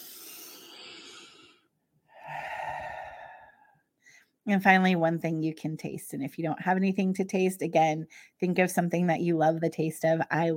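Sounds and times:
deep breath with long inhale and exhale: 0.0s - 4.4s
speech: 4.5s - 10.5s.

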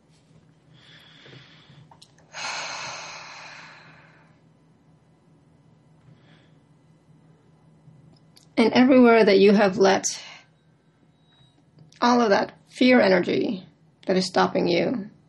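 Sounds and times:
slow deep breathing in and out: 0.7s - 4.5s, 6.0s - 6.8s
speech: 8.6s - 10.2s, 12.0s - 15.1s.

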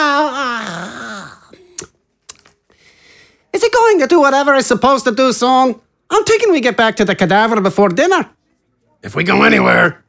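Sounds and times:
man yawning: 0.0s - 1.6s
speech: 4.0s - 8.4s, 9.0s - 10.0s.

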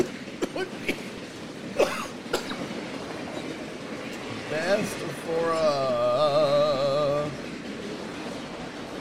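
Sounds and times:
low rumble: 0.0s - 8.9s
dry coughs: 1.8s - 2.7s.

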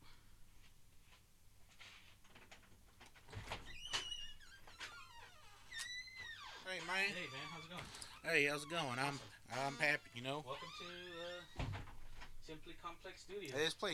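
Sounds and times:
low hiss: 0.0s - 13.9s
studio door creaking and squeaking as it is opened: 3.1s - 12.9s
short squeals: 3.7s - 11.7s
speech: 6.8s - 11.6s, 12.5s - 13.9s.

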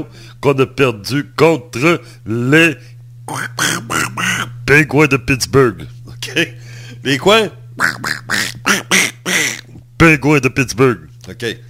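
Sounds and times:
speech: 0.0s - 8.9s, 10.0s - 11.6s
steady low hum: 0.0s - 11.6s
voice imitating duck quacks: 3.3s - 4.6s, 7.8s - 9.8s.

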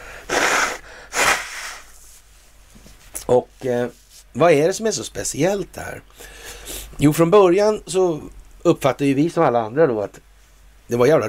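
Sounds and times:
forceful airy nose blowing: 0.0s - 2.1s
speech: 3.3s - 10.3s, 10.9s - 11.2s.

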